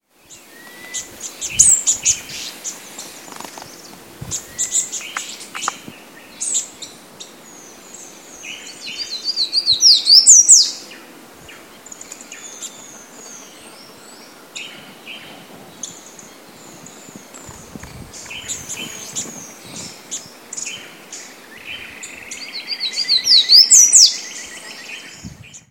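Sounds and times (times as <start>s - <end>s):
Basileuterus culicivorus calls: 0.2s - 25.6s.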